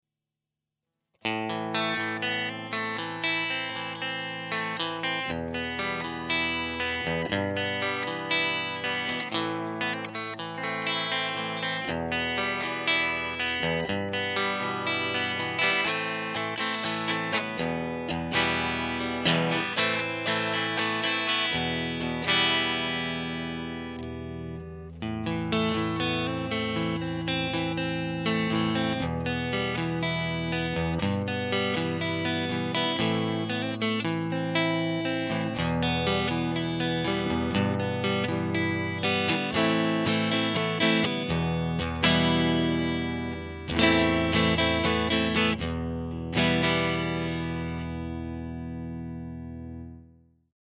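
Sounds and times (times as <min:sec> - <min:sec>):
Strat electric guitar: 0:01.2 - 0:50.2.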